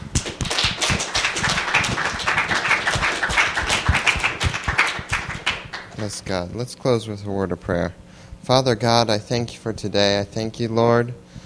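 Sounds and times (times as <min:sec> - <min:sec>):
audience clapping: 0:00.0 - 0:06.3
speech: 0:06.0 - 0:11.2.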